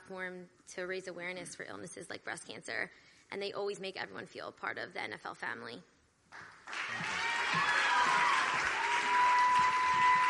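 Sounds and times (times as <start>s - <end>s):
speech: 0.1s - 7.7s
audience applause and cheering at a breast-cancer awareness event: 6.6s - 10.2s.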